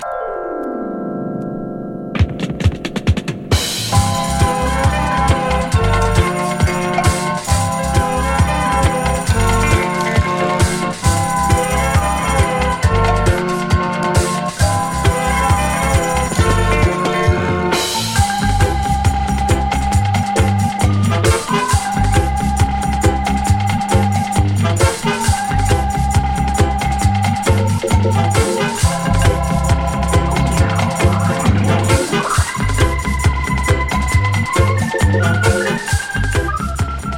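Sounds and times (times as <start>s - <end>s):
Far East organ: 0.0s - 37.1s.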